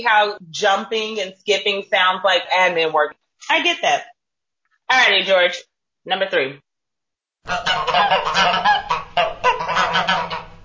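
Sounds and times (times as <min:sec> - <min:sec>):
speech: 0:00.0 - 0:04.1, 0:04.9 - 0:06.6, 0:07.4 - 0:08.9, 0:10.0 - 0:10.4
goose honking: 0:07.5 - 0:10.6.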